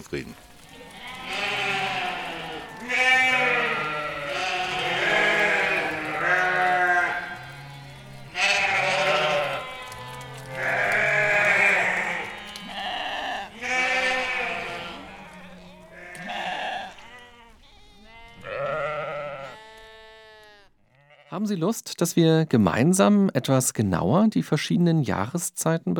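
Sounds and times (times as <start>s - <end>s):
speech: 0.0s - 0.5s, 2.8s - 3.3s, 21.5s - 25.9s
sheep bleating: 0.6s - 21.4s.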